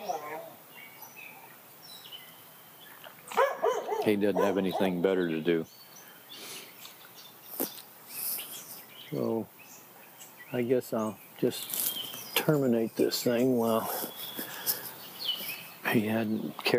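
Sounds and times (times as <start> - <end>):
dog barking outdoors: 0.0 - 0.6, 3.3 - 5.0
speech: 4.1 - 5.9, 10.5 - 14.1, 15.9 - 16.7.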